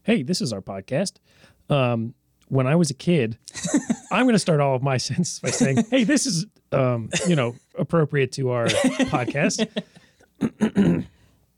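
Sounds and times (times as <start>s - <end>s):
speech: 0.0s - 11.1s
laughter: 3.5s - 4.3s, 5.4s - 6.4s, 8.6s - 10.1s
person clearing throat: 5.5s - 6.0s, 7.0s - 7.6s, 8.7s - 9.4s, 10.4s - 11.2s.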